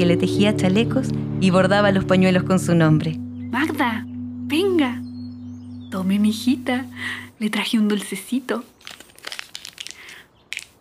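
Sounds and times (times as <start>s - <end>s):
speech: 0.0s - 5.0s, 5.9s - 8.7s
candy wrapper crinkling: 8.7s - 10.8s.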